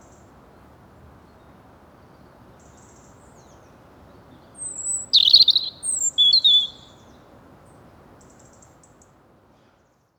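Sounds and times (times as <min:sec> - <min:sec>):
European robin song phrase: 0:04.5 - 0:07.1.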